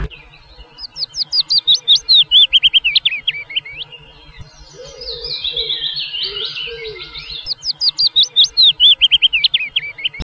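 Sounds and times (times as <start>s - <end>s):
willow warbler singing: 0.0s - 10.2s.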